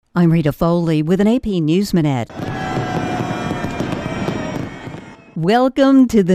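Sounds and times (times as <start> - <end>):
speech: 0.2 - 2.5, 5.4 - 6.3
fireworks at a New Year celebration in Las Vegas: 2.3 - 5.4.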